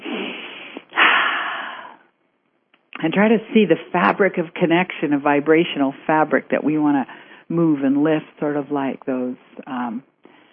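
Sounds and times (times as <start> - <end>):
deep breaths taken slowly: 0.0 - 2.1, 7.1 - 7.5, 10.2 - 10.5
speech: 3.0 - 10.1.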